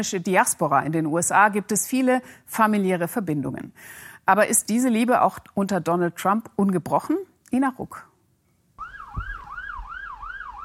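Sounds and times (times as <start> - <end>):
speech: 0.0 - 8.1
New York police car siren wailing: 8.8 - 10.6.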